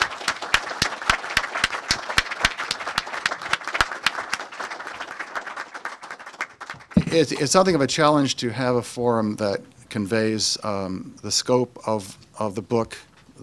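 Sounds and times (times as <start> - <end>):
audience at a book forum applauding: 0.0 - 7.5
speech: 7.1 - 13.4.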